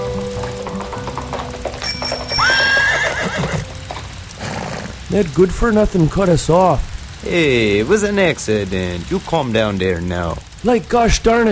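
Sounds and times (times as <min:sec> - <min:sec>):
bell ringing: 0:00.0 - 0:04.2
buggy wheels rattling: 0:00.0 - 0:11.5
horse and buggy hooves clip-clopping: 0:00.0 - 0:11.5
horse whinnying: 0:02.1 - 0:05.0
speech: 0:05.1 - 0:11.5.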